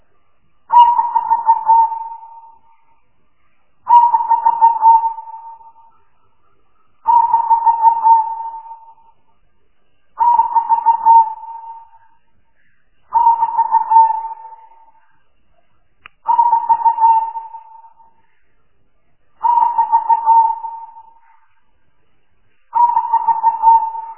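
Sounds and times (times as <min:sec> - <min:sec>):
spotted dove lure calls cooing: 0:00.7 - 0:02.7, 0:03.9 - 0:05.9, 0:07.0 - 0:09.1, 0:10.2 - 0:12.1, 0:13.1 - 0:15.0, 0:16.3 - 0:18.2, 0:19.4 - 0:21.4, 0:22.7 - 0:24.1.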